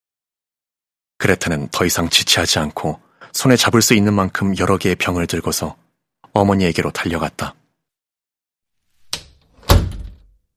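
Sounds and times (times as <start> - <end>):
speech: 1.2 - 7.6
door kicked shut with a foot: 9.5 - 10.4.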